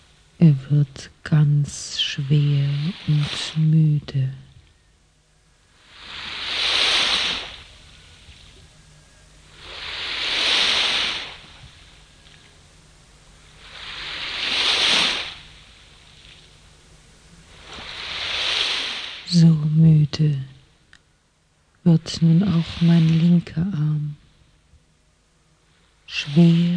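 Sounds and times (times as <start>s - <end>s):
speech: 0.4s - 4.5s, 21.9s - 24.1s
ocean waves washing onto the shore: 2.0s - 3.8s, 5.8s - 8.6s, 9.4s - 12.4s, 13.4s - 16.6s, 17.4s - 19.8s, 22.0s - 24.4s, 25.7s - 26.7s.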